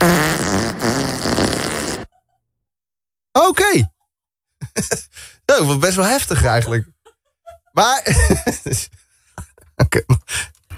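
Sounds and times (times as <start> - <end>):
long loud buzzing fart: 0.0 - 2.1
speech: 3.5 - 3.9, 4.8 - 7.0, 7.8 - 9.0
laughter: 4.6 - 5.2, 6.3 - 10.4.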